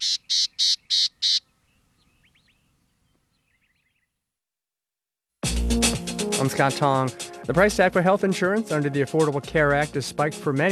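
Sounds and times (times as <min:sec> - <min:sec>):
gnatcatcher harsh buzzy calls: 0:00.0 - 0:02.7
faint high twittering chirps: 0:00.0 - 0:04.2
speech: 0:06.4 - 0:10.7.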